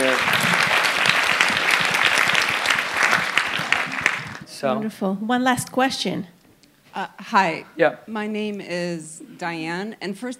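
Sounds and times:
audience applause: 0:00.0 - 0:04.5
speech: 0:04.6 - 0:06.4, 0:07.0 - 0:10.3.

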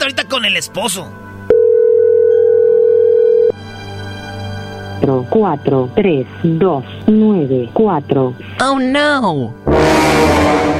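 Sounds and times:
speech: 0:00.1 - 0:01.3, 0:05.0 - 0:10.7
telephone line tone as a call is placed: 0:01.5 - 0:03.6.

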